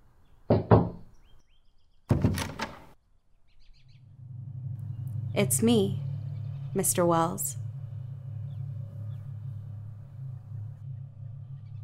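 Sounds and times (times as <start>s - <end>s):
faint birds chirping: 0.2s - 2.2s, 3.3s - 4.2s, 4.8s - 11.8s
knocking on a front door: 0.5s - 1.0s
low rumble: 3.7s - 11.8s
speech: 5.4s - 6.0s, 6.8s - 7.6s.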